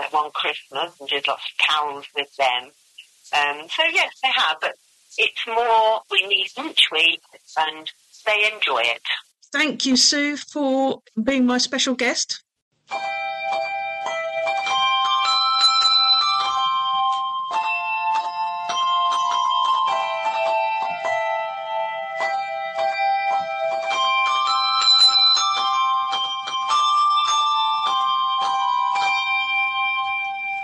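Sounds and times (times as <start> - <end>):
speech: 0.2 - 13.6
group of handbells ringing a tune: 12.9 - 30.6.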